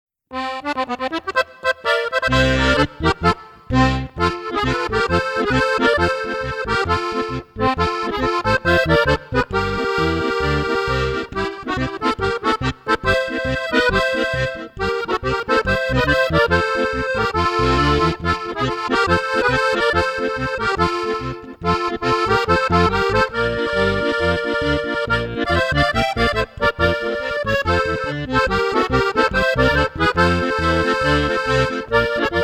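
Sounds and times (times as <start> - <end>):
Oberkrainer alpine folk music: 0.3 - 32.4.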